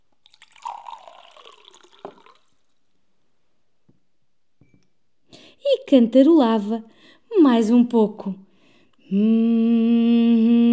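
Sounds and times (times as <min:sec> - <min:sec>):
water pouring into a jar: 0:00.2 - 0:02.8
speech: 0:05.9 - 0:08.4, 0:09.1 - 0:09.9.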